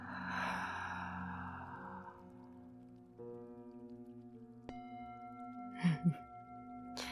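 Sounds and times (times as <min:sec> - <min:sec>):
soft breathing in and out: 0:00.0 - 0:02.6
quiet steady tonal drone: 0:00.0 - 0:07.1.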